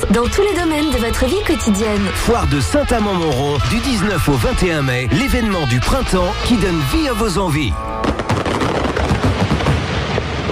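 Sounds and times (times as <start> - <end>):
speech: 0.1 - 8.2
fireworks and pyrotechnic effects banging and popping: 8.0 - 10.4.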